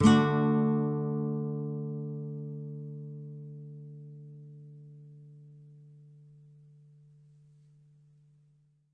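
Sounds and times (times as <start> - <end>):
nylon guitar D major chord: 0.0 - 8.4.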